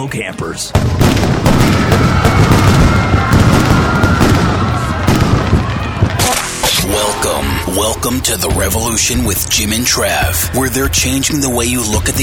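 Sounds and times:
speech: 0:00.0 - 0:03.3, 0:06.9 - 0:12.2
firecrackers popping in a roaring campfire: 0:00.8 - 0:09.7
steady tone: 0:06.2 - 0:09.8.

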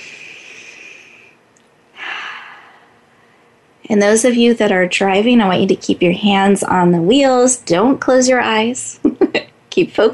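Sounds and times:
deep human breath inhale and exhale: 0:00.0 - 0:01.4, 0:02.0 - 0:03.6
speech: 0:03.9 - 0:10.1.

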